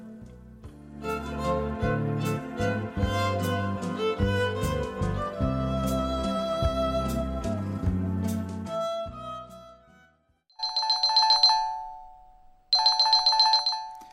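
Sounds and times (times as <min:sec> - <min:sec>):
music: 0:00.0 - 0:10.5
telephone ringing: 0:10.6 - 0:14.1.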